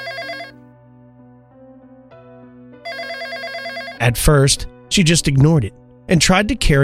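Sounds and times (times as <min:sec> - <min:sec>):
coworker's phone ringtone playing an electronic melody at work: 0:00.0 - 0:00.6, 0:02.8 - 0:04.2
speech: 0:04.0 - 0:06.8.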